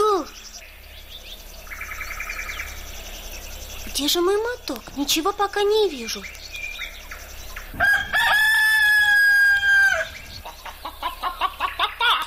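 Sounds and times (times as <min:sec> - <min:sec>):
speech: 0:04.0 - 0:06.4
hens clucking and cackling: 0:04.0 - 0:12.2
rooster crowing: 0:07.7 - 0:12.2.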